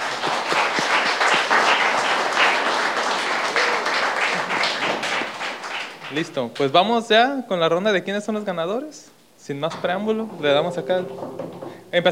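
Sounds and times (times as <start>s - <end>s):
crowd applauding at a prize-giving event: 0.0s - 6.2s
speech: 6.1s - 12.1s.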